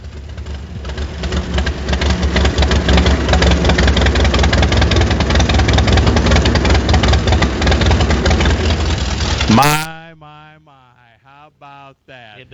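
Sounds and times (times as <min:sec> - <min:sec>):
hand-cranked engine starting and running: 0:00.0 - 0:09.5.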